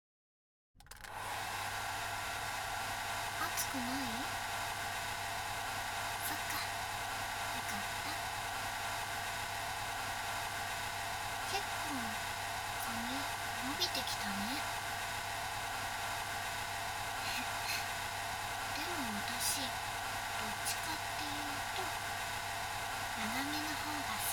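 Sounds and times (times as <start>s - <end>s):
hair dryer blowing with motor hum: 0.9s - 24.3s
speech: 3.6s - 4.4s, 13.9s - 14.8s, 19.6s - 19.9s, 20.6s - 22.1s.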